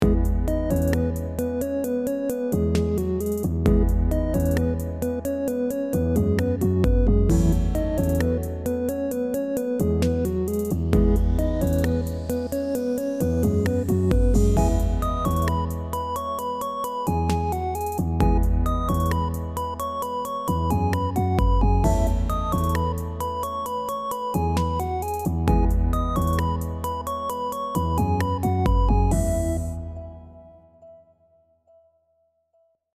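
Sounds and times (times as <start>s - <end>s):
music: 0.0s - 32.8s.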